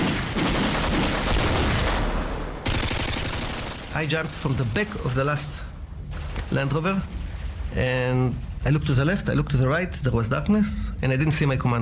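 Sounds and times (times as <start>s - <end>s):
rifle gunfire in rapid volleys: 0.0s - 4.0s
speech: 4.0s - 5.7s, 6.5s - 11.7s.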